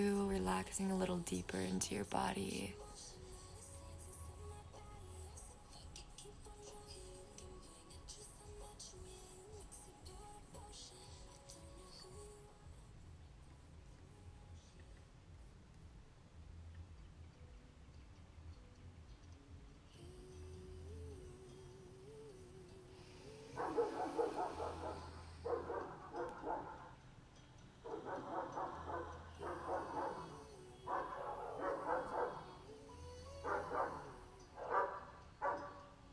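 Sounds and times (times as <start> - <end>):
speech: 0.0 - 2.9
quiet steady hum: 0.0 - 36.1
dogs barking: 23.6 - 27.0, 27.8 - 32.7, 33.4 - 36.0.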